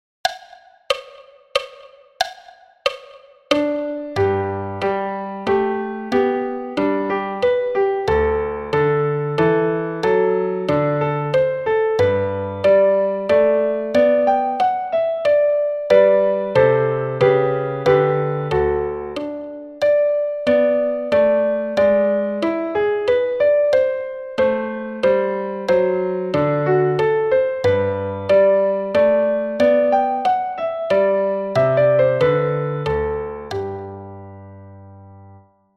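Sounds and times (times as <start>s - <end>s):
woodblock ticking: 0.2s - 4.5s, 13.4s - 22.0s, 32.9s - 33.9s
classical minuet on piano: 2.9s - 35.7s.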